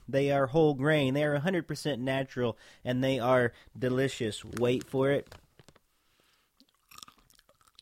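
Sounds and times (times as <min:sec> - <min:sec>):
speech: 0:00.1 - 0:05.4
crunching of gluten-free whole-grain popcorn chips being chewed: 0:06.6 - 0:07.8.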